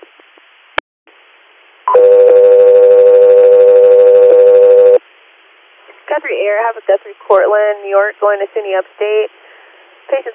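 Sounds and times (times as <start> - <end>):
radio dispatch alert tones: 1.9 - 5.0
speech: 6.2 - 9.4, 10.1 - 10.3.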